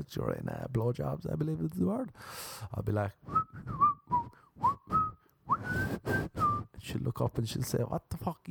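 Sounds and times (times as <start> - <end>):
speech: 0.0 - 5.0, 6.8 - 8.4
breathy voiced sounds: 2.1 - 6.8
person whistling a short wavering tune: 3.3 - 6.8.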